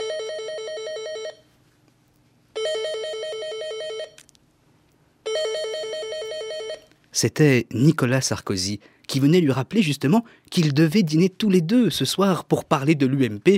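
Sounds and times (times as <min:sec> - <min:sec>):
telephone ringing with a bright buzzy electronic bell tone: 0:00.0 - 0:01.5, 0:02.6 - 0:04.2, 0:05.3 - 0:06.9
speech: 0:07.2 - 0:13.5.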